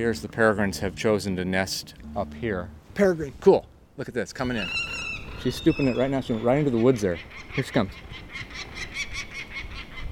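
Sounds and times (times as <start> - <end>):
speech: 0.0 - 8.7
raven giving harsh calls: 4.4 - 9.9.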